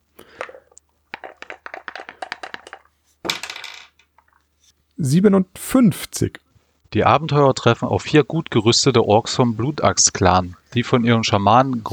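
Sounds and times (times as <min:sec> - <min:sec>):
ten-sided die clattering across a hard surface: 0:01.1 - 0:04.5
speech: 0:05.0 - 0:11.9.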